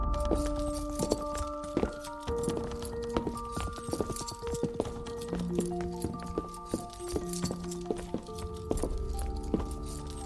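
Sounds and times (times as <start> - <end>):
chains clinking and jangling: 0.1 - 10.2
shackled prisoner's slow footsteps scraping: 0.2 - 10.2.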